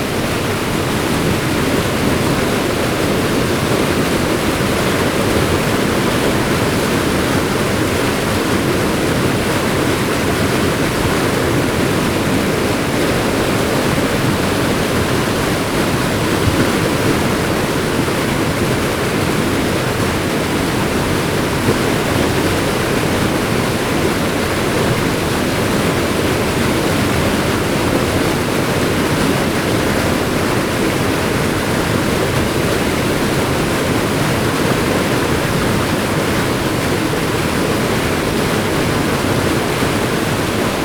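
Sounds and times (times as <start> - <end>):
dam waterfall: 0.0 - 40.8.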